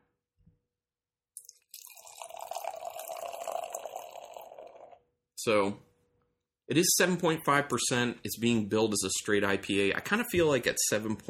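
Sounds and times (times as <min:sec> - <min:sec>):
IPA beer pouring into a glass: 0:01.4 - 0:05.0
speech: 0:05.4 - 0:05.9, 0:06.7 - 0:11.2.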